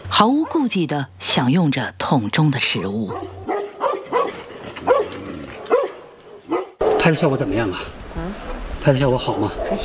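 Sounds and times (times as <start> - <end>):
speech: 0.2 - 3.4, 7.0 - 9.8
dogs barking at a brown bear: 0.3 - 0.8, 3.0 - 7.3.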